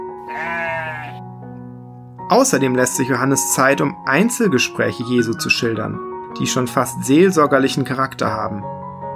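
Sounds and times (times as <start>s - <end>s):
sheep bleating: 0.2s - 1.2s
speech: 2.3s - 8.8s.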